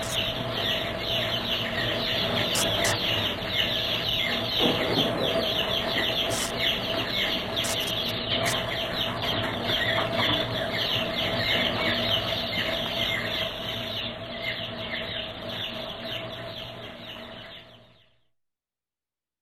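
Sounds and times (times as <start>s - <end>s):
birds chirping in a busy chorus: 0.0s - 18.3s
sharp clicks: 2.6s - 3.0s, 6.3s - 6.6s, 7.6s - 8.6s.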